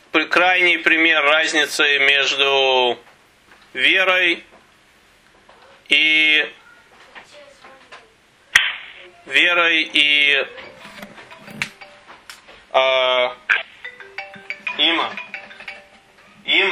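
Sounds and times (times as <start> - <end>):
speech: 0.4 - 3.1, 3.7 - 4.5, 5.9 - 6.6, 9.3 - 10.7, 12.7 - 13.6, 14.8 - 15.2, 16.5 - 16.7
telephone ringing in trilling electronic bursts: 9.9 - 12.6, 13.5 - 16.7.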